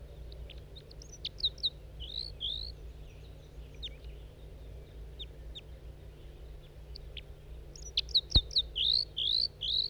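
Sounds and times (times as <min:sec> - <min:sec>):
wild male bird calling with high sharp chirps: 0:00.4 - 0:04.2, 0:07.8 - 0:09.8.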